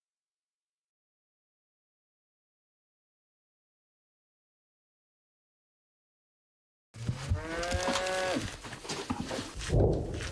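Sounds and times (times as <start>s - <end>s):
cow mooing: 7.0s - 8.5s
rustling shuffling movement: 7.0s - 10.3s.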